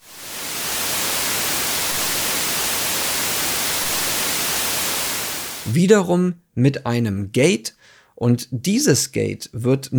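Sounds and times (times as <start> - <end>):
steady broadband white noise hiss: 0.0 - 5.8
speech: 5.7 - 9.9.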